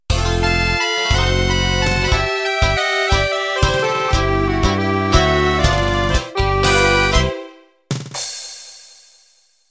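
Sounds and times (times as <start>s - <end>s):
tango music intro: 0.2s - 7.6s.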